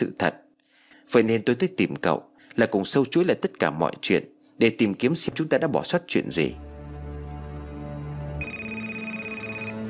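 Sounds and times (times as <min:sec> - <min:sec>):
speech: 0:00.0 - 0:00.4, 0:01.1 - 0:06.7
telephone ringing with a bright electronic tone: 0:08.4 - 0:09.8.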